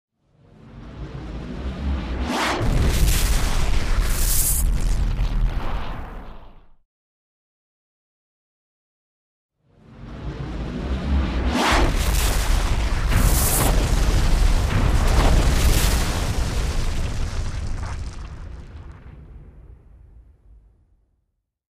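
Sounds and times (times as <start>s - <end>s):
energy shot explosion: 1.1s - 6.8s, 10.6s - 19.8s.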